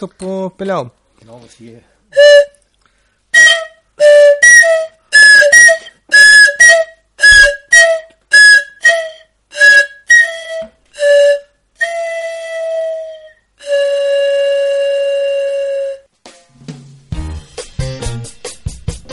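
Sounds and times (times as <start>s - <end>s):
speech: 0.0s - 2.4s
pifilca whistle blasts: 2.2s - 2.6s, 3.4s - 16.1s.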